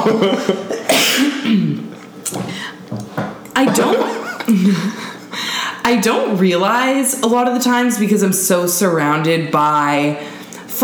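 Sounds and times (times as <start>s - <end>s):
laughter: 0.0s - 0.9s, 3.6s - 5.4s
person coughing: 0.0s - 1.9s, 3.7s - 4.9s
speech: 0.0s - 2.5s, 6.0s - 10.8s.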